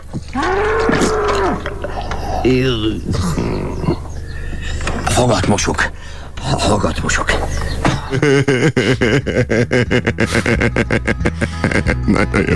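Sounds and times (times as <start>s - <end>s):
bull mooing on a farm: 0.1s - 5.1s
laughter: 1.0s - 4.9s, 7.8s - 12.5s
speech: 2.4s - 3.5s, 5.2s - 12.5s.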